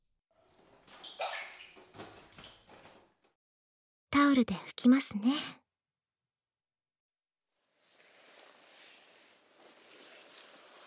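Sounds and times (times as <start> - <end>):
feet lifted out of a hot-water foot bath, sloshing and dripping: 0.3 - 3.4, 8.1 - 10.8
speech: 4.3 - 5.6.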